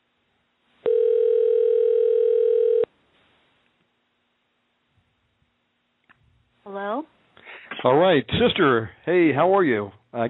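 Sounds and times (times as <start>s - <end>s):
telephone dial tone while placing a call: 0.8s - 2.9s
speech: 7.8s - 10.2s.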